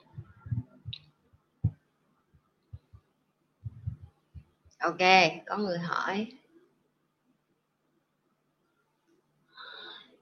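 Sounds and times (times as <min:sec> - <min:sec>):
microphone being fixed with low thumps and bumps: 0:00.0 - 0:01.0, 0:03.6 - 0:04.6
speech: 0:04.8 - 0:06.4.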